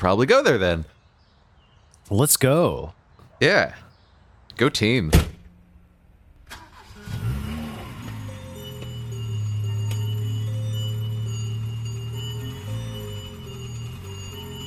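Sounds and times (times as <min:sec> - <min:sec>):
speech: 0:00.0 - 0:01.0, 0:02.1 - 0:03.8, 0:04.6 - 0:05.3
police car engine cranking and catching: 0:06.3 - 0:14.6.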